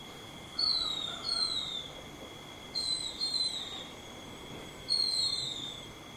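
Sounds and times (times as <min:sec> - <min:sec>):
faint high hum: 0:00.0 - 0:06.1
silvereye subspecies vegetus high thin downslurred whistled calls: 0:00.6 - 0:02.0, 0:02.8 - 0:03.9, 0:04.9 - 0:05.9.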